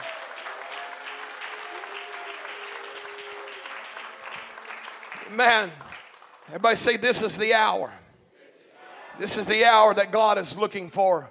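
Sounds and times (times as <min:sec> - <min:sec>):
audience clapping hands in dense applause: 0:00.0 - 0:07.1
speech: 0:05.3 - 0:05.8, 0:06.5 - 0:08.0, 0:09.2 - 0:11.2.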